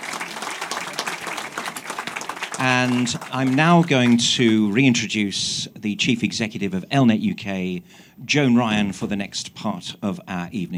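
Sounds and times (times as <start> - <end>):
audience applauding guests at an evening event: 0.0 - 4.8
speech: 2.6 - 10.7.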